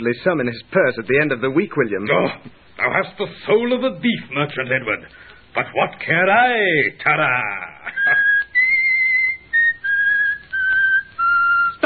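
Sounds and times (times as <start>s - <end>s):
speech: 0.0s - 8.2s
person whistling a short tune: 7.9s - 11.8s.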